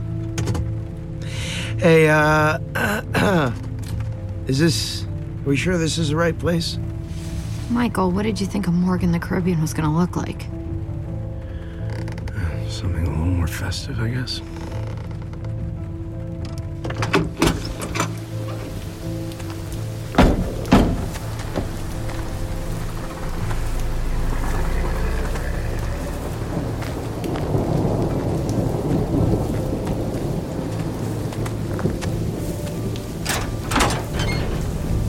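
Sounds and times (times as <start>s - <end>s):
heavy rain downpour in a thunderstorm: 0.0s - 35.0s
speech: 1.8s - 3.7s, 4.5s - 7.0s, 7.7s - 10.6s, 12.8s - 14.6s
thunder cracks and rumbles: 20.2s - 35.0s.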